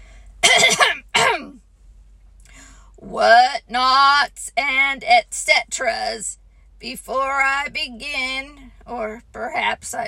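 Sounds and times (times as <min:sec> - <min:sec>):
man clearing his throat: 0:00.4 - 0:01.5
speech: 0:03.2 - 0:10.0.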